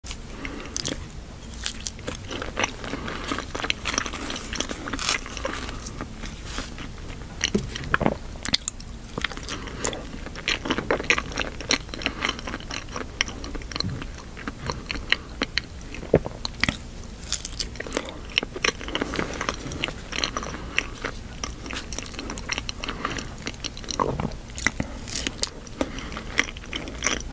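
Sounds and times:
person eating bananas: 0.1 - 27.3.

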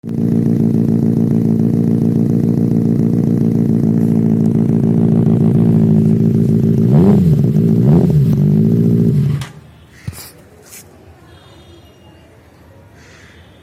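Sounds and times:
Benelli exhaust: 0.0 - 10.2.

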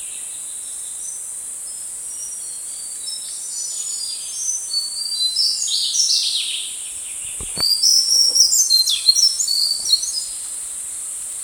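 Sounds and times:
slaty-bellied tesia singing: 0.0 - 10.4.

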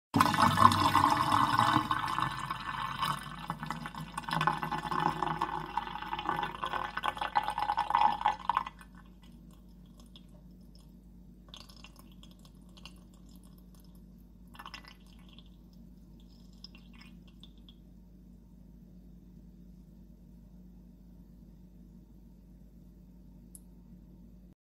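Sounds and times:
water in a pipe: 0.2 - 17.8.

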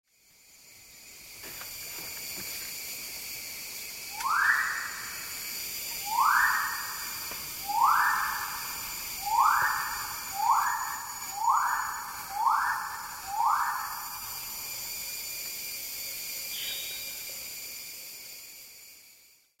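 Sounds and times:
Magnificent riflebird calling: 6.1 - 14.3.

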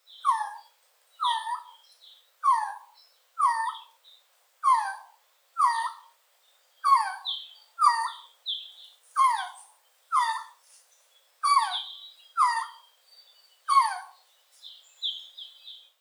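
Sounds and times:
Resplendent quetzal: 0.2 - 1.8, 2.4 - 4.0, 4.6 - 6.1, 6.8 - 8.3, 9.2 - 10.6, 11.4 - 12.8, 13.7 - 14.2.

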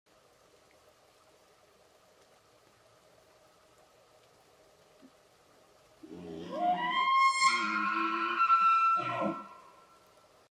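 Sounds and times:
elk: 6.0 - 10.0.

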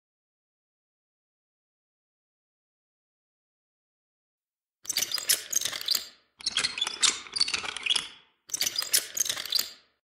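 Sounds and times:
wheelchair: 4.9 - 9.8.

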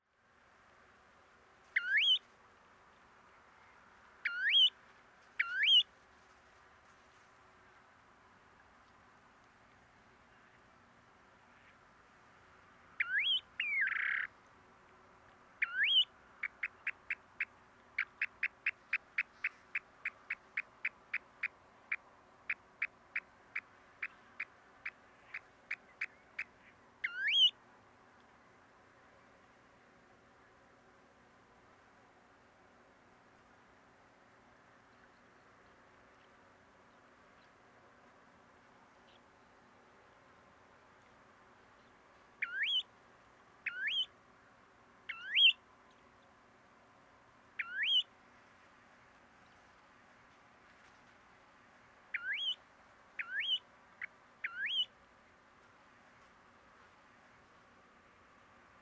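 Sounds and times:
snowy plover calling: 1.8 - 2.2, 3.6 - 4.8, 5.4 - 5.9, 13.0 - 14.3, 15.6 - 27.6, 41.8 - 42.9, 43.6 - 44.1, 45.1 - 45.6, 47.6 - 48.1, 52.1 - 52.6, 53.2 - 54.9.

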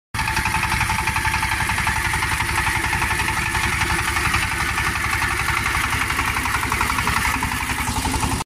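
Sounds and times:
agricultural tiller running: 0.2 - 8.4.

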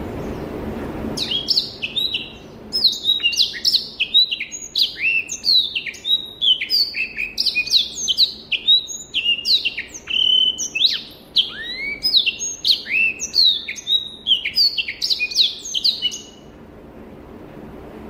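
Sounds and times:
Rüppell's warbler singing: 0.1 - 16.5.

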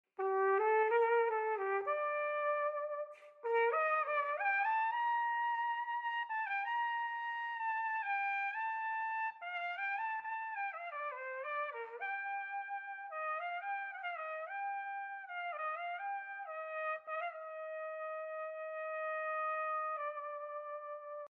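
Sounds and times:
cornet playing: 0.2 - 21.2.

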